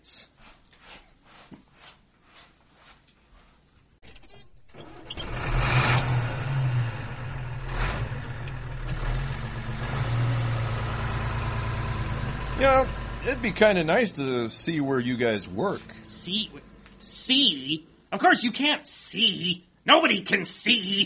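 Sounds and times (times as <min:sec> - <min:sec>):
truck engine cranking and running: 0:04.0 - 0:17.1
speech: 0:13.3 - 0:21.0.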